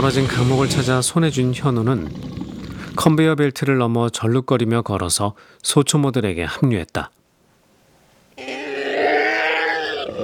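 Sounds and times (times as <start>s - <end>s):
monstrous howling roar: 0.0s - 3.1s, 8.4s - 10.2s
speech: 0.0s - 7.2s.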